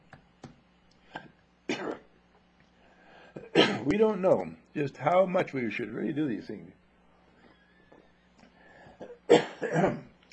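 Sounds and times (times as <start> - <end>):
person coughing after something went down the throat the wrong way: 1.1 - 2.1, 3.3 - 3.9, 8.9 - 10.1
speech: 3.8 - 6.8, 9.7 - 10.0.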